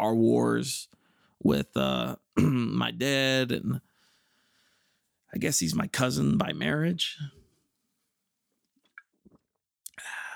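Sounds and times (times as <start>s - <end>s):
speech: 0.0s - 3.9s, 5.3s - 7.4s
mouth clicks and smacks: 8.8s - 10.1s.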